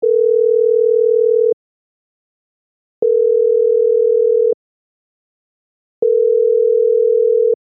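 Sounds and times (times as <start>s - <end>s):
telephone calling tone on sender side: 0.0s - 1.6s, 3.0s - 4.6s, 6.0s - 7.6s.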